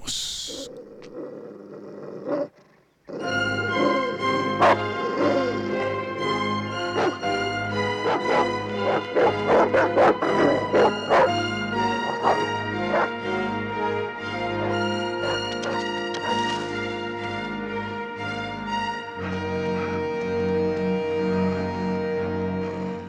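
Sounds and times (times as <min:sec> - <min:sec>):
fierce dog barking and growling aggressively: 0:00.0 - 0:06.2, 0:06.8 - 0:13.2, 0:14.5 - 0:16.7
steady tonal background: 0:03.2 - 0:23.0.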